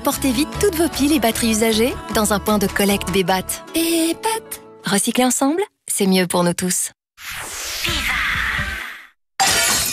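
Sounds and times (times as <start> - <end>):
speech: 0.0 - 8.1
glass window pane shattering: 9.4 - 9.9.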